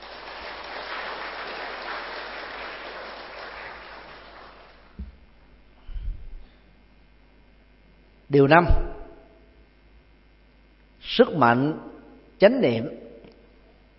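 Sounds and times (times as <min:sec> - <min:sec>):
crowd of Buddhists at a dharma talk clapping: 0:00.0 - 0:05.0
speech: 0:08.3 - 0:09.0, 0:11.2 - 0:13.0.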